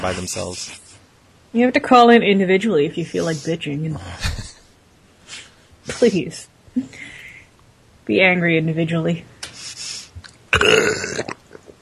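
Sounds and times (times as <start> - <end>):
speech: 0.0 - 0.9, 1.5 - 4.4, 5.9 - 7.0, 8.1 - 9.3, 10.6 - 11.3
noise hiss: 0.0 - 11.7
wet burp: 10.5 - 11.7.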